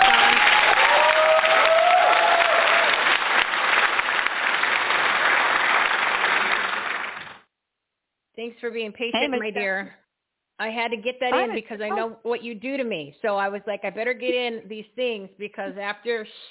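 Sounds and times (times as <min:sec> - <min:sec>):
loud sustained crowd applause: 0:00.0 - 0:07.4
speech: 0:08.6 - 0:10.0, 0:10.6 - 0:16.4.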